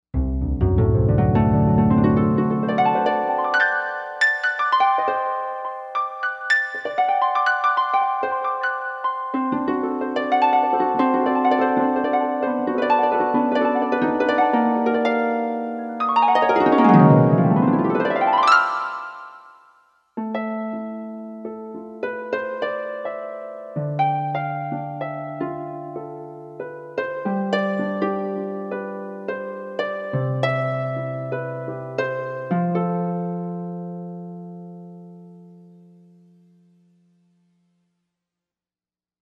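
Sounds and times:
harp on a Korg M1 synthesizer: 0:00.2 - 0:19.6, 0:20.2 - 0:36.8.

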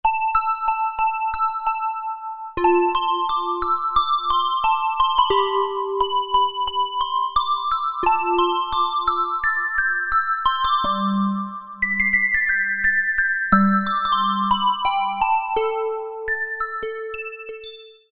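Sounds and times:
synthesizer bells on a Roland MKS-50: 0:00.2 - 0:18.1.

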